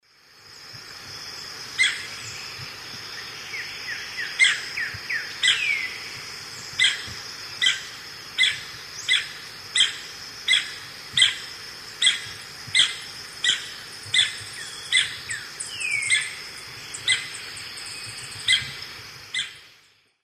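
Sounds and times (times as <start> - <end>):
Chrysoptilus punctigula calls in South America Eastern Lowlands: 1.3 - 20.0.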